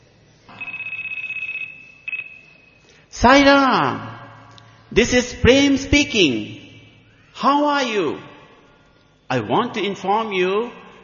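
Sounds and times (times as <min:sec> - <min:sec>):
cell phone ringing with a shrill trilling electronic tone at a seminar in Fukuoka Japan: 0:00.5 - 0:02.8
speech: 0:03.2 - 0:04.1, 0:04.9 - 0:06.6, 0:07.4 - 0:08.3, 0:09.3 - 0:10.8.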